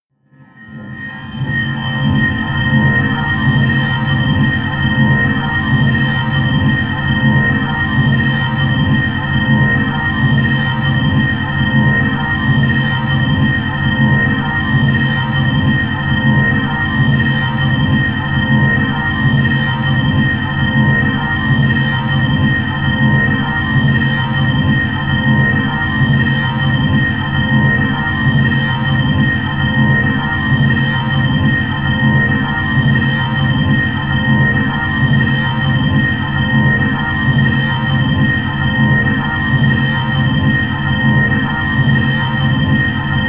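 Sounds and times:
high hollow industrial drone: 0:00.7 - 0:43.2.

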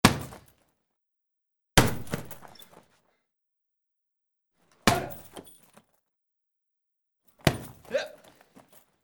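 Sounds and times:
karate kicks hitting a heavy pad: 0:00.0 - 0:00.5, 0:01.8 - 0:02.6, 0:04.9 - 0:05.4, 0:07.4 - 0:07.8.

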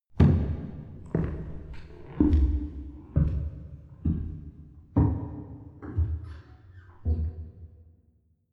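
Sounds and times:
slow footsteps on wooden church stairs: 0:00.2 - 0:06.4.

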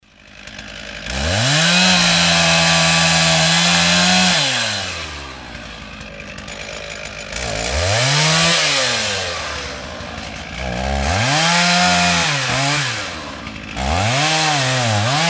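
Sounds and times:
saw chain: 0:00.2 - 0:15.2.

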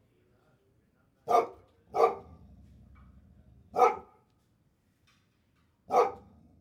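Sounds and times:
chained dog barking: 0:01.3 - 0:02.3, 0:03.7 - 0:04.2, 0:05.9 - 0:06.3.

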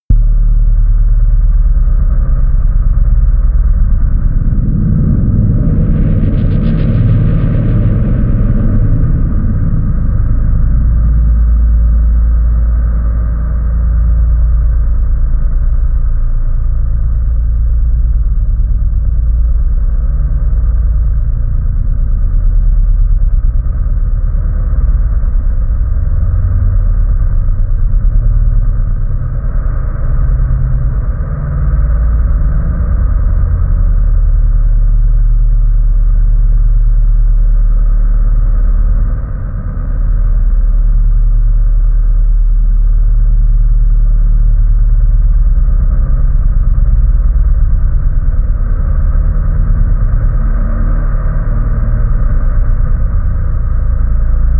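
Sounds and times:
drone rumble flutter: 0:00.0 - 0:54.5.

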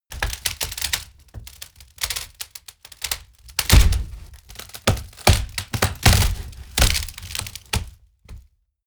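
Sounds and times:
large wood breaking: 0:00.2 - 0:08.4.

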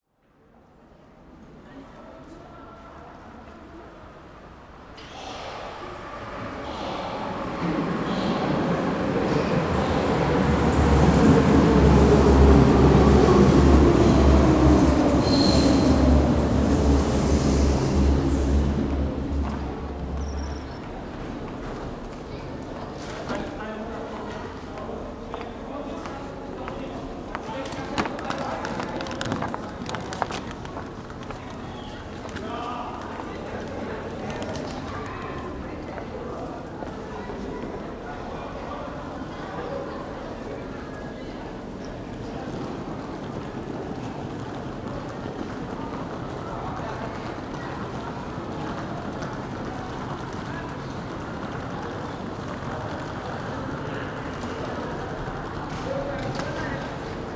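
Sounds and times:
subway tunnel station ambience: 0:00.0 - 0:57.3.

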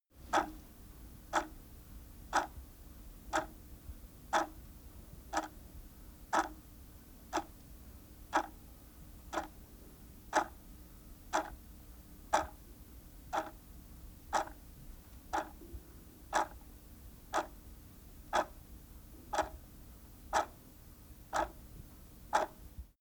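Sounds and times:
wall clock ticking: 0:00.3 - 0:00.6, 0:01.3 - 0:01.6, 0:02.3 - 0:02.6, 0:03.3 - 0:03.6, 0:04.3 - 0:04.6, 0:05.3 - 0:05.6, 0:06.3 - 0:06.6, 0:07.3 - 0:07.5, 0:08.3 - 0:08.6, 0:09.3 - 0:09.6, 0:10.3 - 0:10.6, 0:11.3 - 0:11.6, 0:12.3 - 0:12.6, 0:13.3 - 0:13.6, 0:14.3 - 0:14.6, 0:15.3 - 0:15.7, 0:16.3 - 0:16.6, 0:17.3 - 0:17.6, 0:18.3 - 0:18.6, 0:19.3 - 0:19.6, 0:20.3 - 0:20.6, 0:21.3 - 0:21.6, 0:22.3 - 0:22.9.

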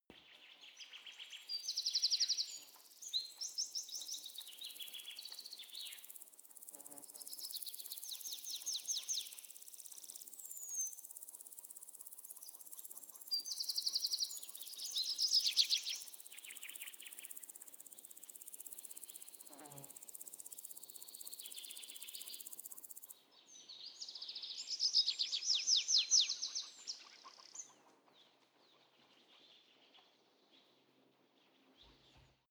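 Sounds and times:
day birds in a forest: 0:00.1 - 0:32.4
insects in a forest: 0:00.9 - 0:23.2, 0:23.8 - 0:27.8
cricket chirping in a forest: 0:01.5 - 0:23.2.

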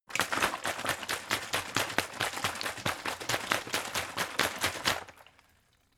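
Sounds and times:
big water bottle shaking: 0:00.1 - 0:05.6.

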